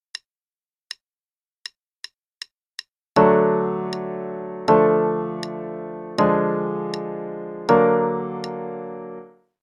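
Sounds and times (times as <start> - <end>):
chords on D: 3.2 - 9.4.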